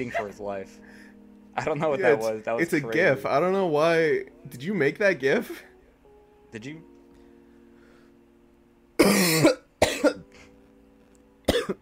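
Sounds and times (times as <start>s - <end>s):
speech: 0.0s - 5.7s, 6.5s - 6.9s
person coughing harshly: 9.0s - 10.3s, 11.5s - 11.8s.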